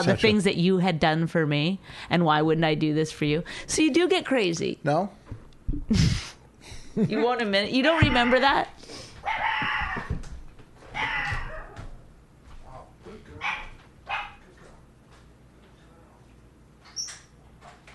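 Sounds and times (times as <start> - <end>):
speech: 0.0 - 6.2, 7.0 - 9.7
dog barking: 9.2 - 9.6, 11.0 - 11.8, 12.7 - 14.4
dog high yelp: 9.2 - 10.1, 10.9 - 11.8, 13.4 - 14.4.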